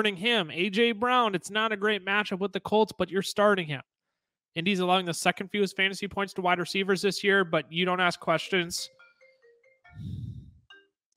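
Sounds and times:
speech: 0.0s - 3.9s, 4.5s - 9.0s, 10.0s - 10.2s
phone ringtone electronic melody of stepped tones: 8.9s - 10.1s.

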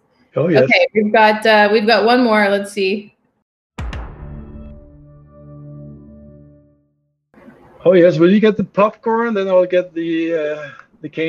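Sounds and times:
speech: 0.4s - 3.2s, 7.8s - 11.2s
streaming service intro sound logo: 3.8s - 6.8s.

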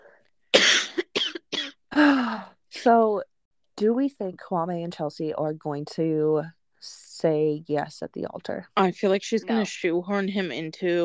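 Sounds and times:
person coughing: 0.6s - 1.9s
speech: 2.8s - 11.0s.

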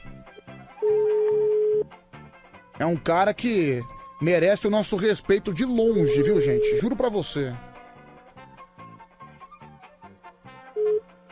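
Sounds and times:
soft music: 0.0s - 11.2s
telephone ringback tone while placing a call: 0.9s - 1.8s, 6.0s - 7.1s
speech: 2.8s - 7.7s.

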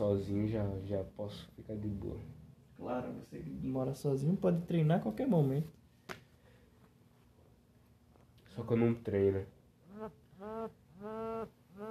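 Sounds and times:
speech: 0.1s - 5.8s, 8.6s - 11.8s
mobile phone buzzing on vibrate: 9.9s - 11.8s.

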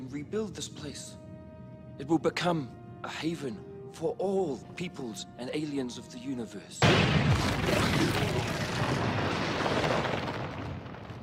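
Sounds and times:
speech: 0.1s - 1.3s, 2.0s - 9.2s
explosion destroying building foundations: 6.8s - 11.2s.

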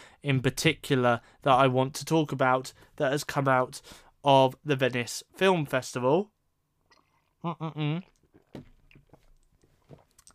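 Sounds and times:
speech: 0.2s - 6.4s, 7.4s - 8.7s
person sipping a drink: 6.8s - 10.3s.

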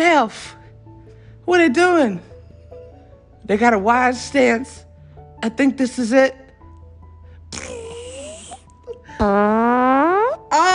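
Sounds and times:
speech: 0.2s - 0.6s, 1.5s - 2.3s, 3.4s - 4.8s, 5.4s - 6.4s, 9.2s - 10.7s
farts: 9.2s - 10.4s.

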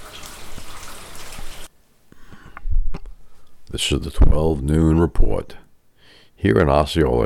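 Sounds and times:
light to moderate rain falling in Osceola Hills: 0.0s - 1.7s
speech: 3.7s - 5.6s, 6.4s - 7.2s.

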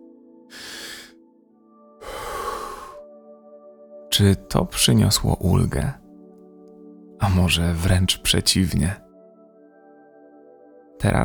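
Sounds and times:
deep quick inhale in a breathing exercise: 0.5s - 1.2s, 2.0s - 3.0s
fast full exhale in a breathing exercise: 0.5s - 1.2s, 2.0s - 3.0s
speech: 4.2s - 6.0s, 7.2s - 9.0s, 11.0s - 11.2s.

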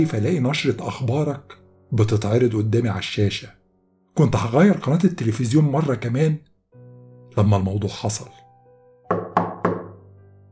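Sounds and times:
speech: 0.0s - 3.6s, 4.2s - 6.5s, 7.4s - 8.4s
firm knocks on a hotel room door: 9.1s - 10.1s.

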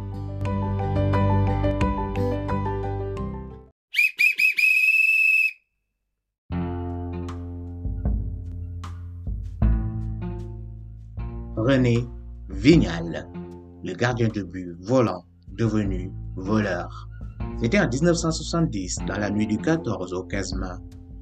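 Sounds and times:
music: 0.0s - 3.7s, 6.5s - 21.2s
referee's whistle blown in shrill blasts to start match: 3.9s - 5.6s
speech: 11.7s - 21.0s.

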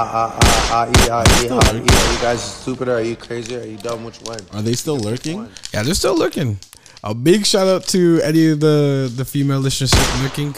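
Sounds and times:
speech: 0.0s - 10.5s
loud gunshot sound effects: 0.4s - 3.8s, 9.8s - 10.5s.

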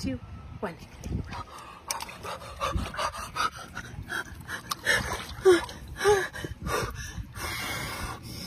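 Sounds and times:
speech: 0.0s - 4.7s
water splashing and sloshing as a person lowers into cold water: 0.6s - 8.2s
person gasping and panting from cold shock: 1.6s - 8.3s.

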